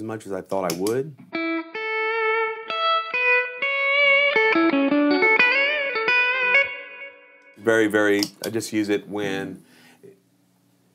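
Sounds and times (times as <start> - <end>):
speech: 0.0 - 1.4, 7.7 - 10.2
electric guitar played through a reverb pedal: 1.2 - 7.6.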